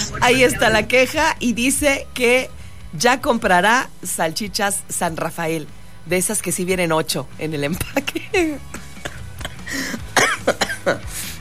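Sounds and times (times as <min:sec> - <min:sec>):
speech: 0:00.2 - 0:08.8, 0:10.8 - 0:11.3
coughing fit with rasping throat sounds: 0:08.7 - 0:11.1.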